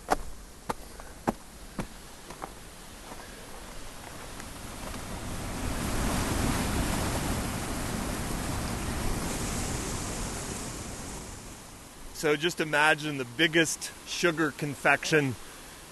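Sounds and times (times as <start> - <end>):
waterfall pouring through ice: 4.2 - 15.9
speech: 12.2 - 15.9.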